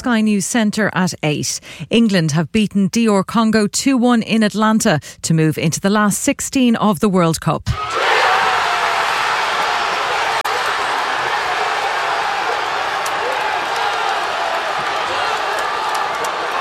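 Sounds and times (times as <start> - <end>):
speech: 0.0 - 8.1
football supporters in Manchester cheering a winning World Cup goal: 7.8 - 16.5.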